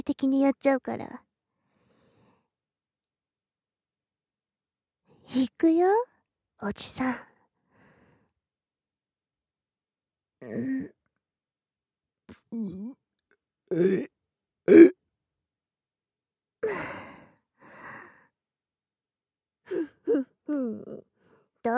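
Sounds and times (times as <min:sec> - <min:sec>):
speech: 0:00.0 - 0:01.2, 0:05.3 - 0:07.3, 0:10.4 - 0:11.0, 0:12.5 - 0:13.0, 0:13.7 - 0:14.1, 0:14.7 - 0:15.0, 0:16.6 - 0:17.0, 0:19.7 - 0:21.7
loud croaky burps: 0:13.7 - 0:14.1, 0:14.7 - 0:14.9.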